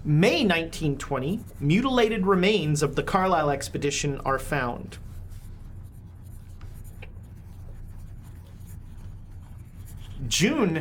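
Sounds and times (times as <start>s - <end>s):
speech: 0.1s - 5.0s, 10.3s - 10.7s
writing by hand: 0.3s - 10.7s.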